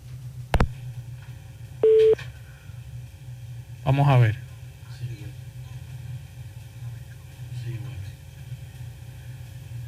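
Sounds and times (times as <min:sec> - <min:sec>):
phone line click after dialing: 0:01.8 - 0:02.2
short steady electronic telephone tone: 0:01.8 - 0:02.2
speech: 0:03.9 - 0:04.4.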